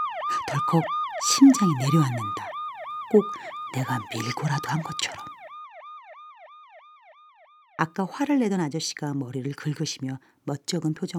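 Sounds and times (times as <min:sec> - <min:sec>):
police patrol car siren yelping: 0:00.0 - 0:07.7
speech: 0:00.3 - 0:02.5, 0:03.1 - 0:05.3, 0:07.8 - 0:11.1.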